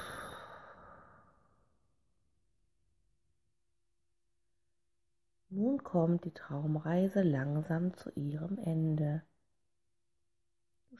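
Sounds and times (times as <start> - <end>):
slow deep breath out during a guided relaxation: 0.0 - 1.8
speech: 5.6 - 9.3.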